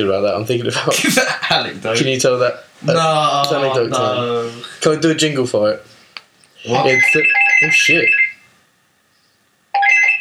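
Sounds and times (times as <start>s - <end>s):
speech: 0.0s - 5.9s, 6.6s - 8.2s
mobile phone ringtone with electronic melody: 6.7s - 8.4s, 9.8s - 10.1s.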